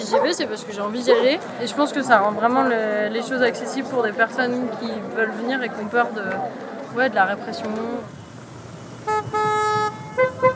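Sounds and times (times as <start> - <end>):
speech: 0.1 - 8.2
car horn honking during a festive car trip: 9.0 - 10.5.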